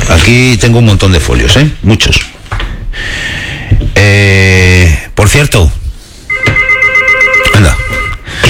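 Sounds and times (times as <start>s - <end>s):
speech: 0.1s - 2.3s, 4.0s - 5.8s
telephone ringing as a call comes into a radio show: 6.3s - 8.3s.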